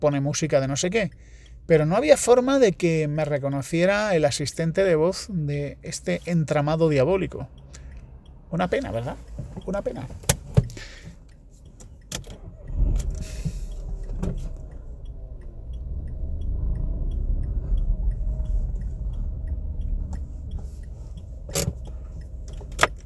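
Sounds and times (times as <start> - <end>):
speech: 0.0 - 7.7, 8.5 - 10.4
low engine rumble of a car inching forward: 0.0 - 23.0
sharp clicks: 7.5 - 23.0.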